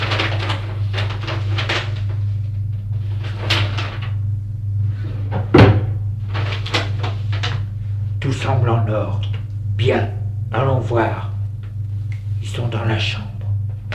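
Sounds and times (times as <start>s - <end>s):
steady low hum: 0.0s - 13.9s
cupboard doors, sideboards and drawers opening and shutting: 5.0s - 7.5s.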